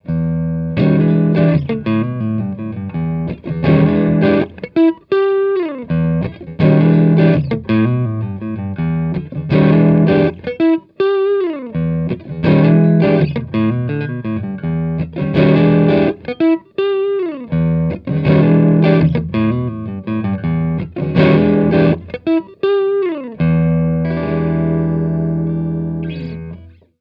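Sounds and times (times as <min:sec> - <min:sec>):
electric guitar in a small room corner: 0:00.0 - 0:26.9.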